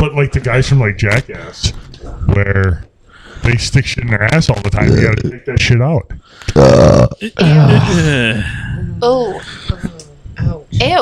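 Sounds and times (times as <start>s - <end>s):
speech: 0.0s - 10.9s
person burping loudly: 4.8s - 5.5s, 6.5s - 8.7s.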